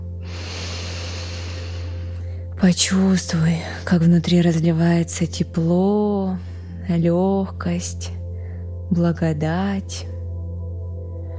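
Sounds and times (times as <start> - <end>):
deep inhale during a breathing exercise: 0.1 - 2.5
speech: 2.6 - 8.2, 8.9 - 10.2.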